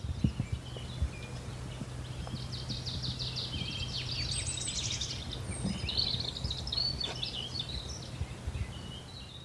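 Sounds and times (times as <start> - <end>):
low steady rumble of noise: 0.0 - 9.3
blackcap singing outdoors: 0.0 - 9.4.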